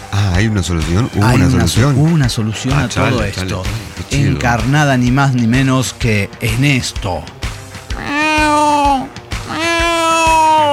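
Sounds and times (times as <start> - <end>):
speech: 0.4 - 7.4
cat meowing: 7.9 - 10.7.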